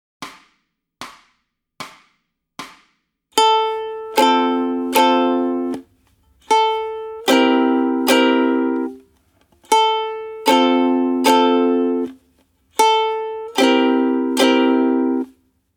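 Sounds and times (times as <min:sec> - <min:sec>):
ukulele warm-up chords in A: 0:03.4 - 0:15.4.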